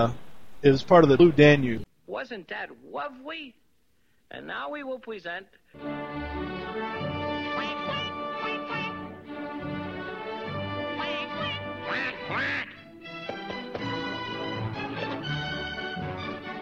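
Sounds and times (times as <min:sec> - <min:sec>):
speech: 0:00.0 - 0:03.6, 0:04.3 - 0:06.2
orchestral-style music: 0:05.8 - 0:16.6
cartoon swans quacking: 0:07.3 - 0:09.2, 0:10.8 - 0:12.9.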